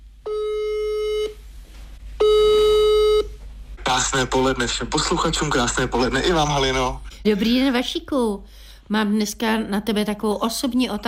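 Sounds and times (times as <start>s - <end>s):
telephone ringback tone while placing a call: 0.3s - 1.4s, 2.2s - 3.3s
speech: 4.0s - 11.0s.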